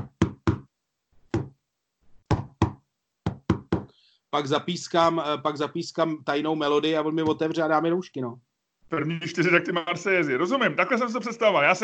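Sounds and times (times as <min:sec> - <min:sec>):
coded knocking pattern on a door: 0:00.0 - 0:01.6, 0:02.2 - 0:03.9
speech: 0:04.3 - 0:11.8.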